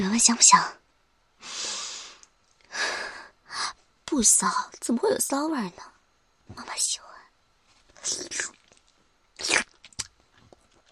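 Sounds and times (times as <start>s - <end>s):
speech: 0.0s - 0.8s, 4.2s - 5.9s, 6.5s - 7.1s, 8.0s - 8.6s
food being bitten and chewed: 8.0s - 10.9s.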